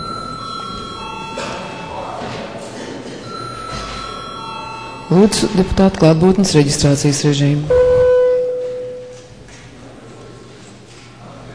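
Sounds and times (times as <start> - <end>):
parliamentary session electric bell ringing: 0.0 - 2.3, 3.2 - 6.6, 7.7 - 9.3
murmur of a large chamber: 0.0 - 11.5
speech: 5.1 - 7.8.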